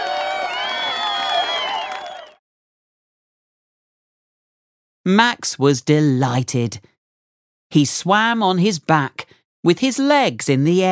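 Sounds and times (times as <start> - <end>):
children clapping: 0.0 - 2.4
crowd of children screaming and cheering excitedly: 0.0 - 2.4
speech: 5.0 - 6.9, 7.7 - 10.9.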